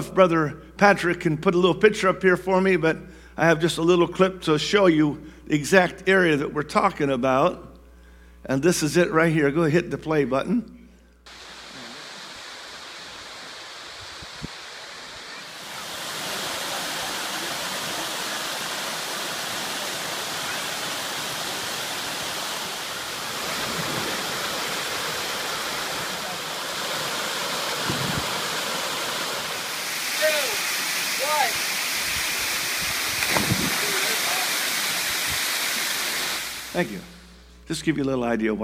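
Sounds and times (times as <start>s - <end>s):
speech: 0.0s - 7.7s, 8.4s - 11.4s, 37.8s - 38.6s
creek rushing with snowmelt in the Cascades: 11.3s - 37.2s.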